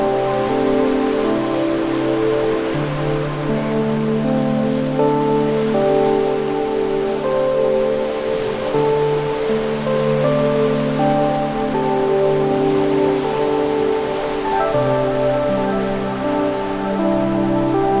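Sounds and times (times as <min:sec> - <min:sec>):
ocean waves washing: 0:00.0 - 0:17.9
soft piano chords: 0:00.0 - 0:17.9.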